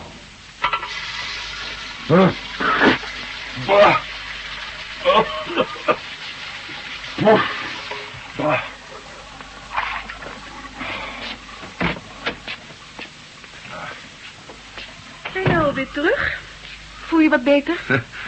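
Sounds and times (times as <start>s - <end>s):
water running from a bathroom tap: 0.6s - 16.5s
speech: 2.1s - 2.4s, 17.6s - 18.1s
laughter: 5.0s - 6.0s.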